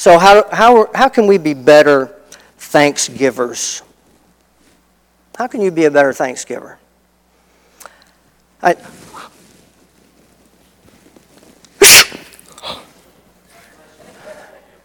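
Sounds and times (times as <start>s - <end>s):
speech: 0.0s - 3.9s, 5.4s - 6.8s, 8.6s - 9.3s
loud sharp fake sneeze: 11.8s - 13.0s
soft breathy sounds: 12.4s - 13.1s.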